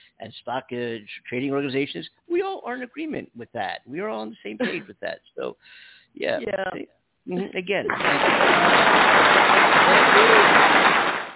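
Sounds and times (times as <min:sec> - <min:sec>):
speech: 0:00.2 - 0:10.7
crowd applause: 0:07.9 - 0:11.3.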